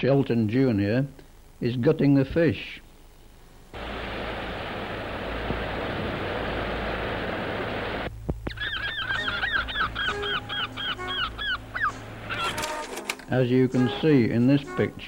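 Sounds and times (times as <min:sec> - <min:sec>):
speech: 0:00.0 - 0:02.8, 0:13.3 - 0:15.0
steady rushing noise: 0:03.8 - 0:08.2
several seagulls squawking: 0:08.5 - 0:12.9.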